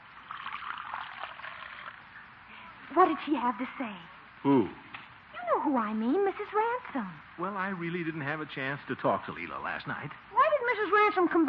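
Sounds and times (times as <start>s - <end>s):
coffee pouring into a cup: 0.0s - 2.1s
speech: 2.9s - 4.8s, 5.5s - 11.4s.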